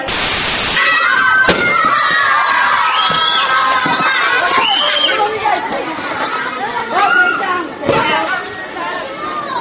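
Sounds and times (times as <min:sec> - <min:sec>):
large group of children shouting and squealing during balloon-popping game: 0:00.8 - 0:09.6.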